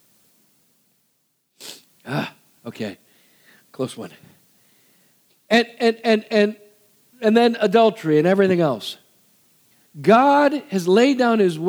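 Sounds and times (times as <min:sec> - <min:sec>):
faint hiss: 0:00.0 - 0:11.6
sneeze: 0:01.6 - 0:02.4
speech: 0:02.0 - 0:03.0, 0:03.8 - 0:04.3, 0:05.5 - 0:06.6, 0:07.2 - 0:09.0, 0:10.0 - 0:11.6.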